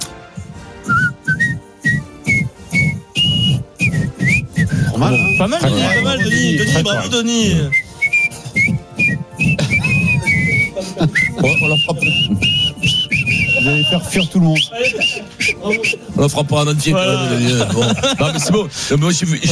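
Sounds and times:
steady rhythmic backing beat: 0:00.0 - 0:16.6
person whistling a tune: 0:00.8 - 0:07.1, 0:07.7 - 0:16.1
speech: 0:05.4 - 0:07.8, 0:11.0 - 0:12.6, 0:13.6 - 0:19.5
laughter: 0:08.5 - 0:16.1, 0:17.0 - 0:19.5.

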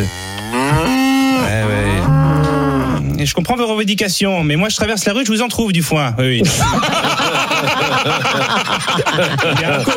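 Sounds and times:
cows mooing: 0:00.0 - 0:03.2
speech: 0:03.2 - 0:09.9
laughter: 0:06.4 - 0:09.9.

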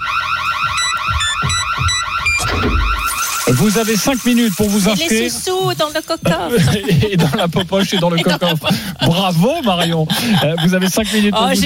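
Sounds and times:
radio contest warbling siren-like electronic alert with high beeps: 0:00.0 - 0:06.4
speech: 0:03.6 - 0:11.6
laughter: 0:05.7 - 0:11.6.

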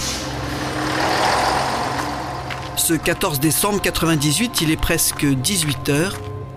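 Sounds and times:
school bus air brakes hissing: 0:00.0 - 0:00.7
large school bus engine idling: 0:00.0 - 0:04.6
speech: 0:02.9 - 0:06.3.

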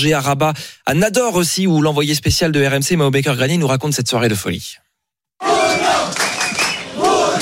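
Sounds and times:
speech: 0:00.0 - 0:04.8
street crowd of Moroccan football fans chanting: 0:05.4 - 0:07.3.

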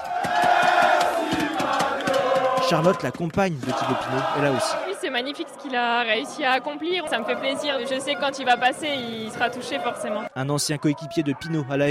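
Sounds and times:
people clapping: 0:00.0 - 0:04.8
big crowd cheering at cycling race roadside: 0:00.0 - 0:11.8
speech: 0:02.7 - 0:11.8.

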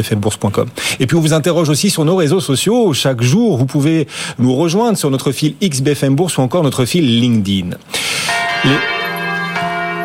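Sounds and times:
speech: 0:00.0 - 0:09.0
church bells ringing a few days before Easter: 0:08.1 - 0:10.0.

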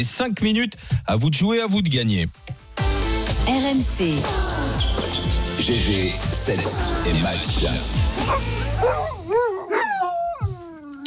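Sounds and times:
speech: 0:00.0 - 0:02.6, 0:03.5 - 0:09.1
dog howling and whimpering: 0:08.2 - 0:11.0.

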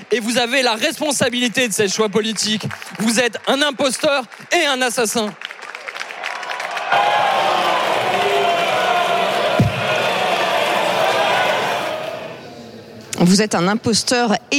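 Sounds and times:
speech: 0:00.1 - 0:05.6, 0:13.2 - 0:14.5
parliament deputies shouting and jeering in uproar: 0:06.0 - 0:12.7
raised voices of deputies: 0:06.9 - 0:12.9
thump: 0:09.6 - 0:09.8.

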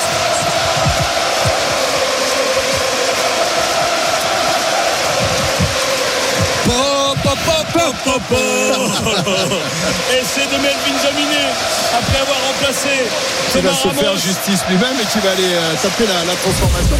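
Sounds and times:
huge stadium crowd roaring: 0:00.0 - 0:16.9
laughter: 0:06.2 - 0:12.6
speech: 0:08.2 - 0:16.9.

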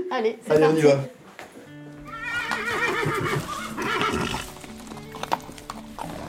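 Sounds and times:
low stable noise: 0:00.0 - 0:06.2
speech: 0:00.1 - 0:01.2
horse hoof clops on hard ground: 0:02.0 - 0:06.2
horse whinnying at the stables: 0:02.0 - 0:06.2.

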